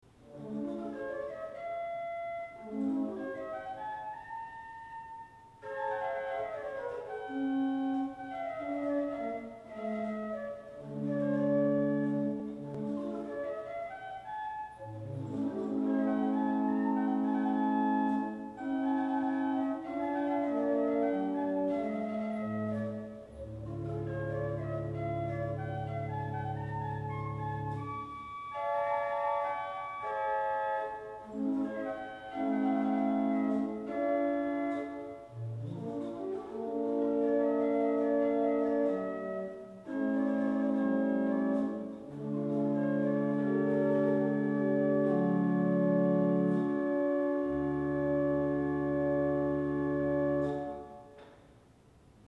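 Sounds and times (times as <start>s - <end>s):
Hohlfloete 8 organ stop: 0.4s - 51.2s.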